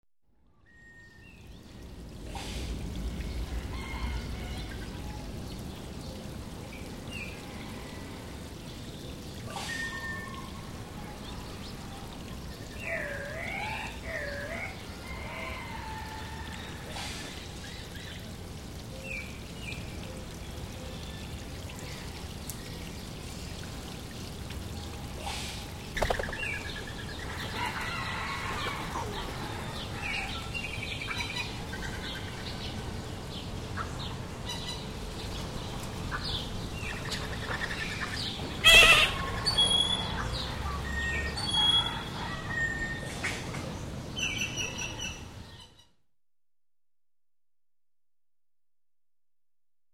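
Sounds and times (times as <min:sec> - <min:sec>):
water stream: 0:01.2 - 0:45.6
birds chirping: 0:25.9 - 0:27.3.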